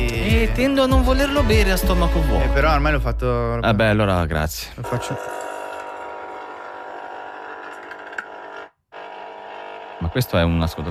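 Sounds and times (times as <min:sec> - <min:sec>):
speech: 0:00.4 - 0:05.4, 0:10.1 - 0:10.9
coffee machine brewing coffee with whir and hum: 0:04.9 - 0:10.9.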